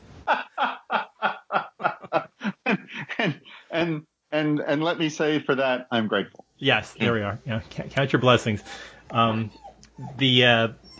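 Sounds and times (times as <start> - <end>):
laughter: 0.2 - 3.6
speech: 3.9 - 9.6, 10.2 - 10.8
dog whimpering and yipping: 9.2 - 10.9.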